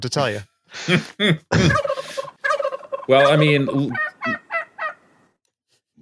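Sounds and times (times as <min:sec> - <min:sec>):
speech: 0:00.0 - 0:02.3, 0:03.1 - 0:04.4
laughter: 0:00.8 - 0:02.3
turkey gobble sound effect: 0:01.7 - 0:05.2.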